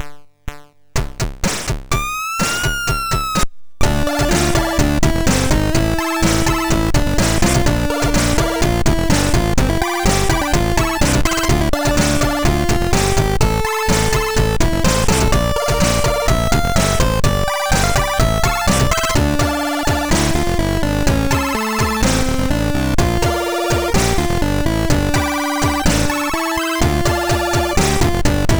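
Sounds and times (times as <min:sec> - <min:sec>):
chiptune music on a MOS6581R4 SID chip: 0:02.0 - 0:28.5.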